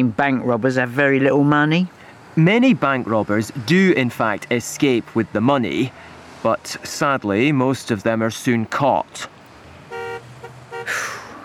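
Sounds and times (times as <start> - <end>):
speech: 0.0 - 9.4, 10.9 - 11.2
rushing vehicle noise: 0.0 - 11.4
car horns in traffic blocking an exit: 9.3 - 11.4.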